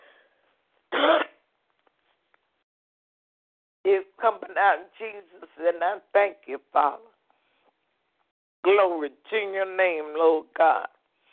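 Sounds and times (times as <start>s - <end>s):
person coughing during a spoken prayer: 0.9s - 1.4s
speech: 3.9s - 7.1s, 8.6s - 11.0s.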